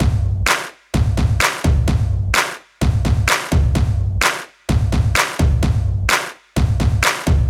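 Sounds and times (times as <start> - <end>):
tom drums: 0.0 - 7.4
claps: 0.5 - 3.6, 4.2 - 7.4.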